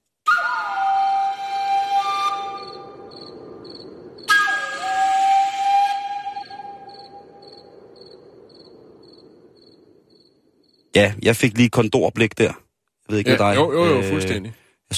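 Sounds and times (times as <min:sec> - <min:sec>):
breathy Colombian flute music: 0:00.2 - 0:07.7
speech: 0:11.0 - 0:14.6.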